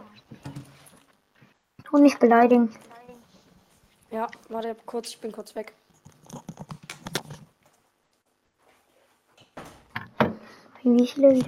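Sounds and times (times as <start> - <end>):
clattering and handling noises: 0.2 - 1.9, 5.9 - 7.9, 8.7 - 11.4
speech: 1.9 - 2.9, 4.1 - 5.8, 10.8 - 11.4.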